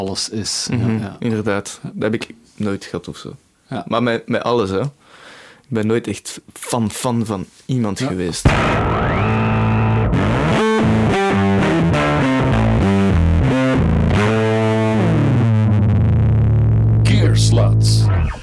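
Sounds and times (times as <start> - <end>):
speech: 0.0 - 9.3
noisy burst: 8.4 - 12.4
distorted effects-laden electric bass guitar playing a riff: 8.4 - 18.4.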